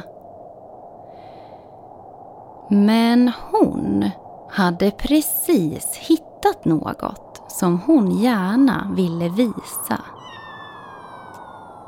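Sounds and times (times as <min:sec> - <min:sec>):
steady hiss: 0:00.0 - 0:11.8
speech: 0:02.7 - 0:10.1
kitten meowing in the snow: 0:10.1 - 0:11.8.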